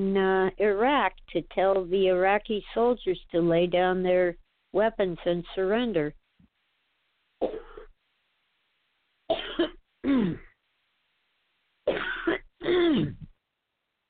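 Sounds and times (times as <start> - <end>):
speech: 0.0 - 6.2, 7.4 - 7.7
person clearing throat: 7.4 - 7.9, 9.3 - 10.6, 11.9 - 13.3
person coughing: 7.4 - 7.9, 9.3 - 10.5, 11.9 - 13.3.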